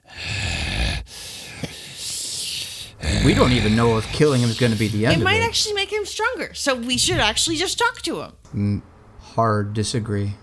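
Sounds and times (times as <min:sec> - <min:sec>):
voice imitating heavy labored breathing of an unconscious man: 0:00.0 - 0:05.6
speech: 0:03.2 - 0:10.4.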